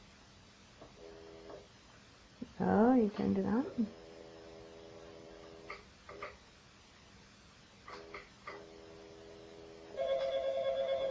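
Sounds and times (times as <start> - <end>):
speech: 2.6 - 4.0
telephone ringing electronically with chirps and warbling ring: 9.9 - 11.0.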